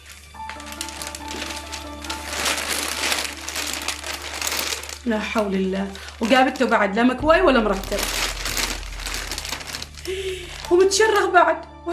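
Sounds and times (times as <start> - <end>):
plastic bag crinkling as it is pulled open: 0.0 - 11.4
low steady hum: 4.7 - 11.9
speech: 5.0 - 8.2, 10.1 - 11.9.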